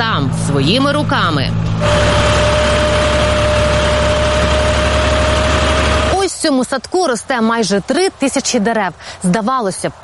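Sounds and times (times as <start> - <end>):
speech: 0.0 - 2.5, 6.4 - 10.0
tractor engine idling with faint whine: 0.0 - 7.2.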